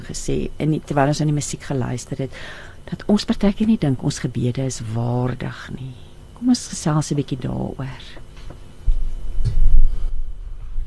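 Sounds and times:
speech: 0.1s - 8.2s
microphones being shifted and handled: 8.4s - 10.2s.

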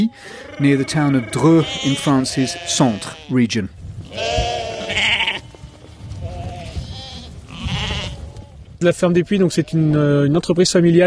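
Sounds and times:
flock of sheep bleating: 0.0s - 3.4s, 4.1s - 8.6s
man calling out to a flock of sheep: 0.0s - 3.7s
speech: 0.0s - 4.5s, 8.8s - 11.0s.

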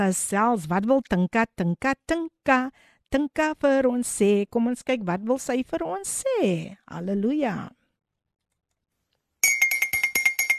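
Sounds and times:
speech: 0.0s - 7.8s
teaspoon clinking against a cup: 9.4s - 10.5s.

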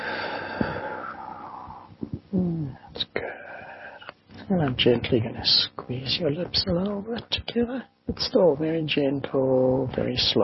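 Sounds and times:
deep breath in and out during a guided relaxation exercise: 0.0s - 1.9s
speech: 4.5s - 10.4s.

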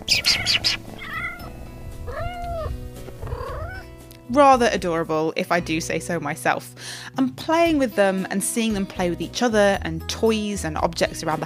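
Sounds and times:
kitten meowing: 0.0s - 3.9s
speech: 4.3s - 11.4s.

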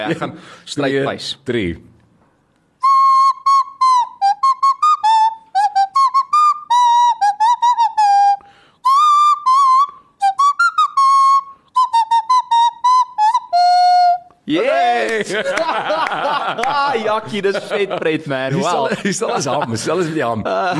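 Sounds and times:
speech: 0.0s - 1.9s, 15.3s - 16.0s, 16.6s - 20.7s
nose whistle playing a bouncy tune: 2.8s - 14.4s
burst of laughter: 14.8s - 20.7s.

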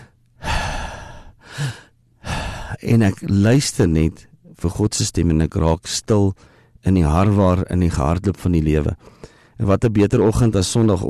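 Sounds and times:
slow deep breath taken during a calm devotional moment: 0.0s - 2.8s, 6.4s - 6.8s, 9.0s - 9.6s
speech: 2.8s - 11.0s.

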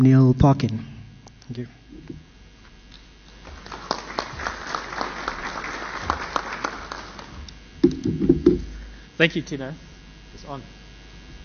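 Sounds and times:
speech: 0.0s - 0.9s, 1.5s - 2.2s, 9.2s - 10.8s
room full of people applauding: 3.3s - 7.5s.

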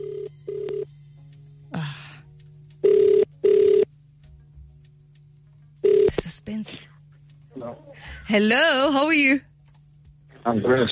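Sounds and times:
phone line ringing tone on an outgoing call: 0.0s - 1.0s, 2.8s - 3.9s, 5.8s - 6.2s
low steady hum: 0.0s - 10.8s
speech: 8.3s - 9.5s, 10.4s - 10.8s.

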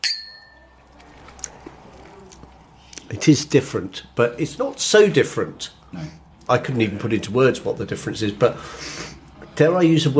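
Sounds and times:
glasses clinking in a toast: 0.0s - 0.8s
speech: 3.1s - 10.1s.

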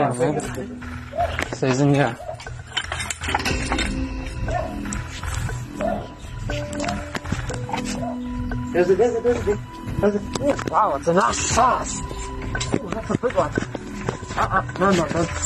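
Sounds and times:
speech: 0.0s - 2.3s, 8.7s - 13.8s, 14.4s - 15.4s
dogs barking and growling during a snake search: 0.8s - 8.7s.

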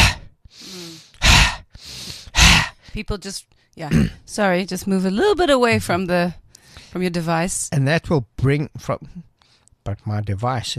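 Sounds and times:
deep inhales and forced exhales of a fire breath breathing exercise: 0.0s - 3.0s
speech: 3.0s - 10.7s.

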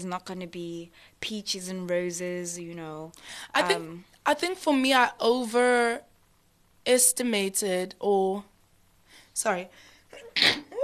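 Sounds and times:
speech: 0.0s - 6.1s, 6.8s - 8.5s, 9.4s - 10.7s
person sneezing: 10.2s - 10.8s.

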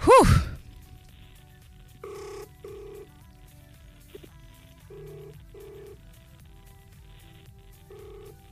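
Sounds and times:
telephone ringing after dialing: 2.0s - 3.3s, 4.1s - 6.4s, 7.0s - 8.4s.

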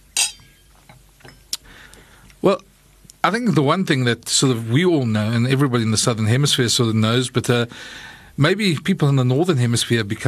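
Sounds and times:
wine glasses clinking in a toast: 0.1s - 0.7s
speech: 2.4s - 10.2s.

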